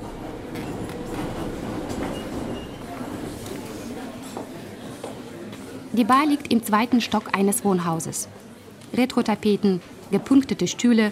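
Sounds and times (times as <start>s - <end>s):
Minsk metro train carriages rumbling: 0.0s - 3.3s
speech: 6.0s - 11.0s.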